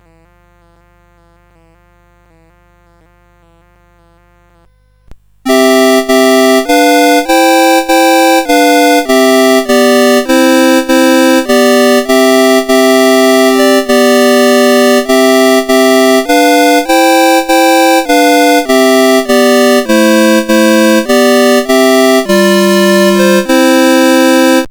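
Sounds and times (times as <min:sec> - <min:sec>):
synthesizer melody: 0:05.5 - 0:24.6.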